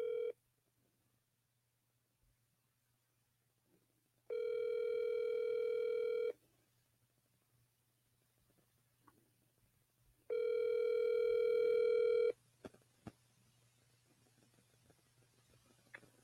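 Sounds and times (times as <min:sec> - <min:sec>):
telephone ringback tone of an outgoing call through an earpiece: 0:00.0 - 0:00.4, 0:04.3 - 0:06.4, 0:10.3 - 0:12.4.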